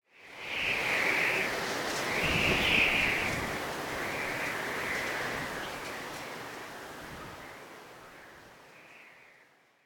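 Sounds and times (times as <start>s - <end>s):
whistling wind ambience: 0.1s - 6.4s.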